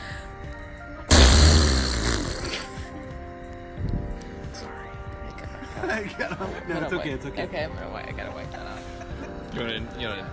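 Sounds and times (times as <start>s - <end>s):
loud blaring raspberry made with the mouth imitating a fart: 1.1s - 2.8s
laughter: 5.6s - 7.4s
speech: 6.0s - 8.7s, 9.5s - 10.3s.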